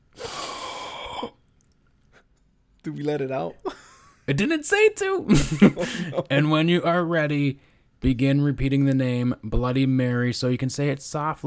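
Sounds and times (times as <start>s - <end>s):
deep breath: 0.1s - 1.4s, 7.6s - 8.0s
speech: 2.8s - 11.4s
laughter: 5.3s - 6.3s.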